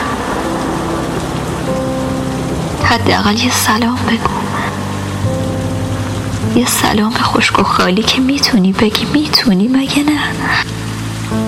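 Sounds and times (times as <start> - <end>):
steady dense rain falling: 0.0 - 11.4
speech: 2.9 - 4.5, 6.6 - 10.8.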